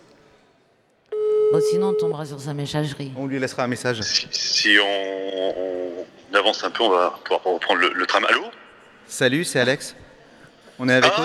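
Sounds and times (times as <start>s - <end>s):
single-pitched telephone ringback tone on an outgoing call: 1.2s - 2.2s
speech: 1.5s - 10.0s, 10.8s - 11.2s.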